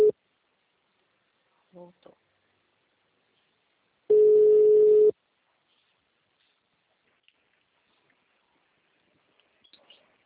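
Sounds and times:
telephone busy tone after a dropped call: 4.1 - 5.1.

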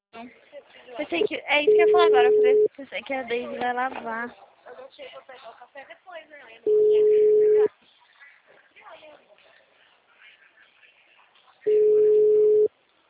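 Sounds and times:
speech: 0.2 - 6.0
phone ringback tone: 1.7 - 2.7, 6.7 - 7.7, 11.7 - 12.7.

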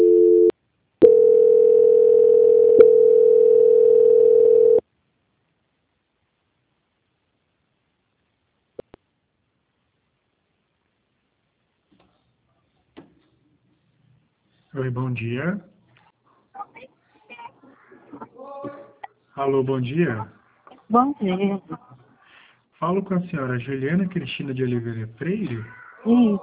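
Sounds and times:
telephone line tone while a call is transferred: 0.0 - 4.8
speech: 14.9 - 15.7, 19.4 - 21.9, 22.8 - 26.4.

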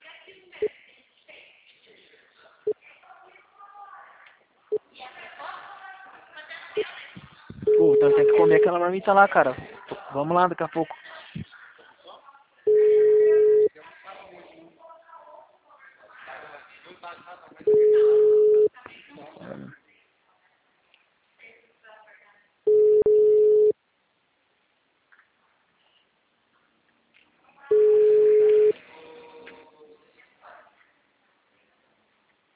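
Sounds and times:
telephone busy signal: 7.7 - 8.8, 12.7 - 13.7, 17.7 - 18.7, 22.7 - 23.7, 27.7 - 28.8
speech: 8.0 - 11.0.

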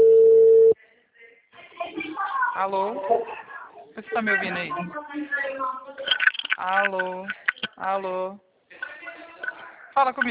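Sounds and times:
telephone call tone beep: 0.0 - 0.8
speech: 2.6 - 8.5, 10.0 - 10.2.

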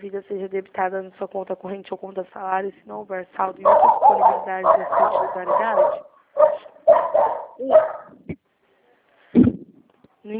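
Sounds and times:
speech: 0.0 - 8.2
dog barking sharply: 3.6 - 8.1.

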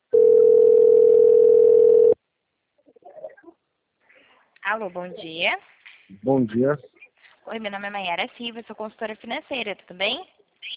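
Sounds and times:
telephone call tone beep: 0.1 - 2.2
speech: 4.7 - 10.7.

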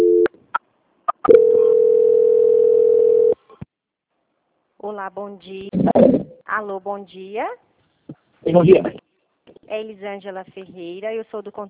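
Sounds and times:
telephone line tones during a call transfer: 1.3 - 3.4
speech: 4.9 - 7.7, 8.4 - 9.0, 9.7 - 11.6.

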